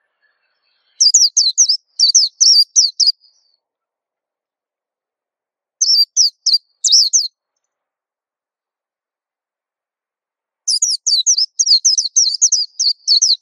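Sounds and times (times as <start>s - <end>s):
white-eye singing quick high slurred notes: 0.0s - 3.6s, 5.8s - 7.7s, 10.7s - 13.3s.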